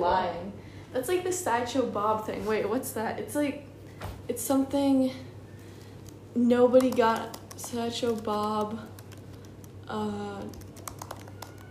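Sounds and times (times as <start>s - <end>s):
speech: 1.0s - 3.7s, 4.3s - 5.3s, 6.4s - 8.9s, 9.9s - 10.6s
typing on a computer keyboard: 6.7s - 11.6s.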